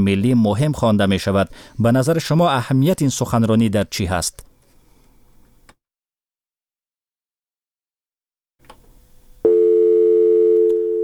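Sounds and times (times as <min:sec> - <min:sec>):
speech: 0:00.0 - 0:04.5
telephone busy tone after a call cuts off: 0:09.5 - 0:11.0.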